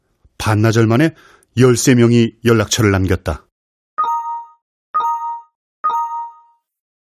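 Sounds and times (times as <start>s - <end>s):
speech: 0.5s - 3.5s
electronic notification chime from an app on a smartphone on a sofa: 4.0s - 6.7s.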